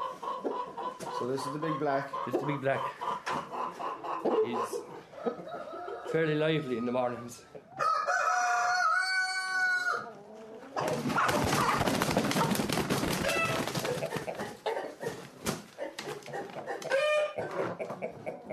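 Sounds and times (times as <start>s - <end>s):
championship hens clucking and squawking while loaded into crates: 0.0s - 18.5s
speech: 1.2s - 3.0s, 4.4s - 5.4s, 6.1s - 7.5s
rooster crowing: 7.8s - 10.1s.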